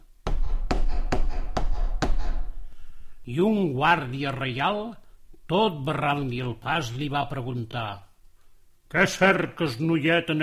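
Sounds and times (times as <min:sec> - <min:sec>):
firm knocks on a palace door: 0:00.2 - 0:02.5
speech: 0:03.3 - 0:08.1, 0:08.9 - 0:10.4.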